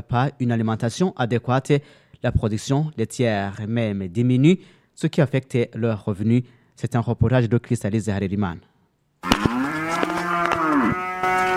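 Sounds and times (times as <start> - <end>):
speech: 0.1 - 9.4
cow mooing on a livestock farm in Okigalamango: 9.2 - 11.5.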